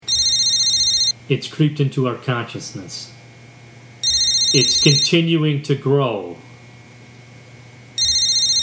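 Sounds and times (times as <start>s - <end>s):
telephone ringing with a bright electronic ringtone: 0.0s - 1.2s, 4.0s - 5.3s, 8.0s - 8.6s
speech: 1.3s - 3.2s, 4.5s - 6.5s.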